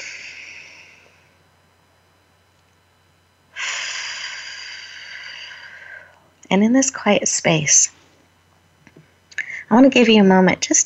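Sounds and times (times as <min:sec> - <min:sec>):
deep breath in through the nose and out through pursed lips: 0:00.0 - 0:01.4, 0:03.5 - 0:06.3
speech: 0:06.5 - 0:08.0, 0:09.7 - 0:10.8.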